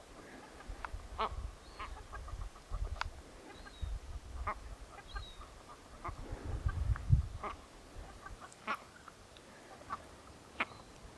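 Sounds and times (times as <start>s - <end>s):
bird calls: 0.0s - 11.1s.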